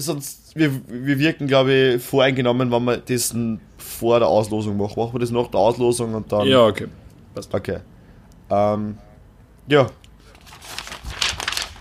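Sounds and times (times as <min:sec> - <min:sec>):
speech: 0:00.0 - 0:07.9, 0:08.5 - 0:09.1, 0:09.7 - 0:10.0
paper crinkling and rustling: 0:10.2 - 0:11.7.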